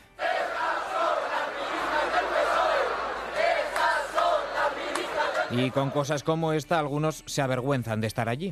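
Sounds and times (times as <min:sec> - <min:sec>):
large protest crowd chanting outdoors: 0:00.0 - 0:06.3
speech: 0:05.5 - 0:08.5.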